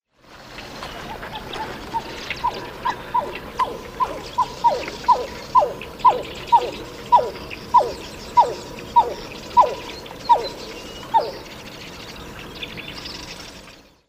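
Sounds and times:
pied-billed grebe song: 1.1s - 11.6s.

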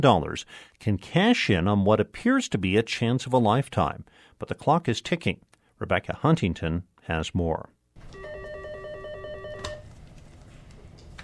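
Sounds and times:
speech: 0.0s - 8.3s
office telephone ringing at a law firm: 8.0s - 9.9s.

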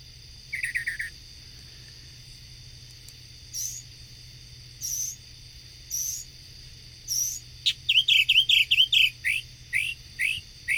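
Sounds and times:
steady high insect-like hum: 0.0s - 10.7s
mockingbird singing varied high phrases: 0.5s - 1.2s, 3.5s - 3.9s, 4.8s - 5.2s, 5.9s - 6.3s, 7.1s - 10.7s.

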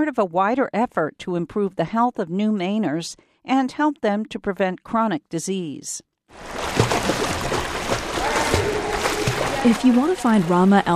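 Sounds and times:
speech: 0.0s - 7.4s, 9.6s - 10.9s
water splashing and churning in an indoor swimming pool: 6.3s - 10.9s.

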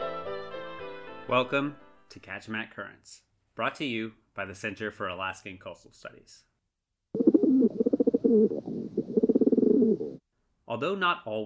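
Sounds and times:
speech: 1.3s - 6.5s, 8.3s - 8.8s, 9.9s - 11.4s
rock pigeon cooing: 7.2s - 10.2s.

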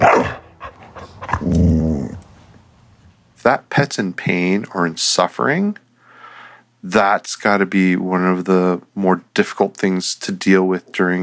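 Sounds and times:
dog barking: 0.0s - 1.4s
dog growling: 0.0s - 2.3s
speech: 3.4s - 5.8s, 6.8s - 11.2s.

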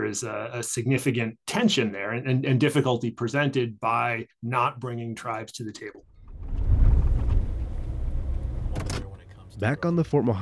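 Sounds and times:
speech: 0.1s - 6.1s, 9.6s - 10.4s
truck engine rumbling while driving and parking on a dirt road: 6.1s - 10.0s.

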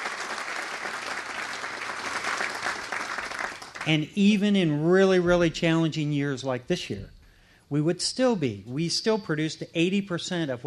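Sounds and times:
applause from a sizable audience: 0.0s - 3.9s
speech: 3.8s - 10.6s.

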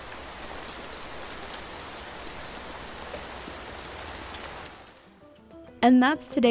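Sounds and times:
steady dense rain pattering on surfaces: 0.0s - 5.1s
speech: 5.8s - 6.4s.

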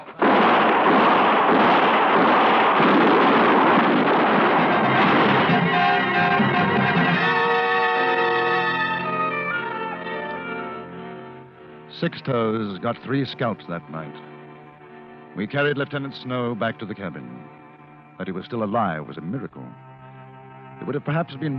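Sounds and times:
explosive blasts in a battle: 0.0s - 8.2s
continuous barrage of gunfire in a battle: 0.0s - 9.0s
speech: 12.0s - 14.3s, 15.4s - 17.6s, 18.2s - 19.9s, 20.8s - 21.5s.

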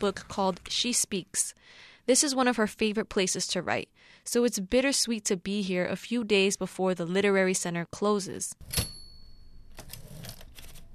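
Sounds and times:
speech: 0.0s - 8.9s
mechanical typewriter typing: 9.8s - 10.9s.

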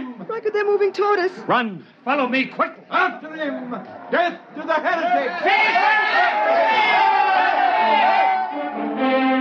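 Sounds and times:
speech: 0.2s - 8.3s
angry crowd yelling and shouting while chasing two people down a steel corridor: 4.7s - 9.2s.

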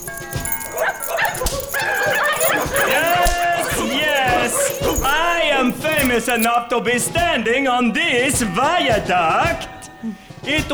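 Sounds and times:
pack of Alaskan Husky sled dogs pulling a sled barking and yipping: 0.0s - 6.9s, 7.6s - 10.7s
speech: 6.1s - 10.7s.

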